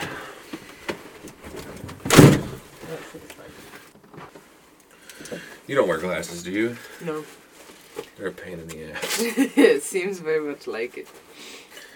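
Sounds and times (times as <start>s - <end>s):
door swinging shut: 1.6s - 2.6s
speech: 5.7s - 7.4s, 8.2s - 11.2s.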